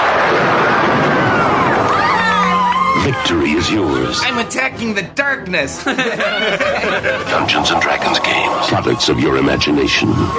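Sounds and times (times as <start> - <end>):
lightning bolt spell blast in a fantasy adventure: 0.0 - 1.9
speech: 3.1 - 10.3
laughter: 5.8 - 10.3.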